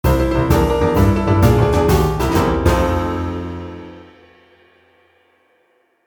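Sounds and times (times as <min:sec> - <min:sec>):
boogie-woogie eyecatch music: 0:00.0 - 0:04.4.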